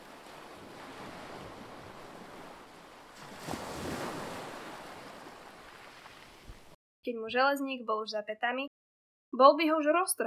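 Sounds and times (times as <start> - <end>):
sea waves breaking on shore: 0.0 - 6.8
speech: 7.1 - 8.7, 9.4 - 10.2.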